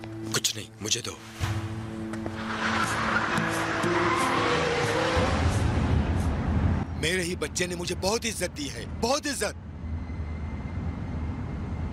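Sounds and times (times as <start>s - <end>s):
road noise: 0.0s - 11.9s
speech: 0.6s - 1.6s, 7.0s - 9.6s
tires squealing: 2.2s - 6.3s
car engine revving hard through the gears: 2.4s - 6.8s.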